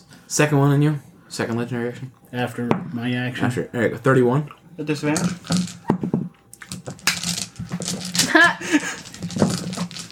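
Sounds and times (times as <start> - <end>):
speech: 0.3 - 6.0
dice clattering and tumbling across a tabletop: 5.1 - 10.1.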